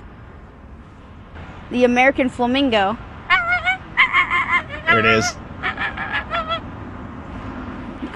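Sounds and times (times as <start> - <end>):
speech: 1.7 - 3.0, 4.9 - 5.4
boy imitating Canada goose honk: 3.4 - 6.6.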